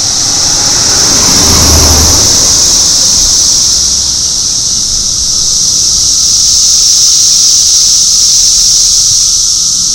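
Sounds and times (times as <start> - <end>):
car passing by: 0.0 - 4.8
steady high-pitched buzzing drone: 0.0 - 9.9.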